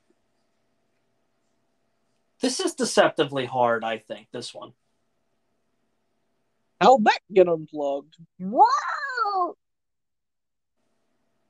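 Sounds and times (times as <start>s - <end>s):
speech: 2.4s - 4.8s, 6.8s - 9.6s
person giving a nasal meow in imitation of a cat: 8.4s - 9.6s.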